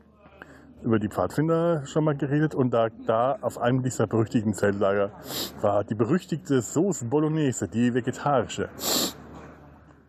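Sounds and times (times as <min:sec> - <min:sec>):
speech: 0:00.8 - 0:09.2
forceful nasal sniff through a congested blocked nose: 0:05.2 - 0:05.6, 0:08.8 - 0:09.5.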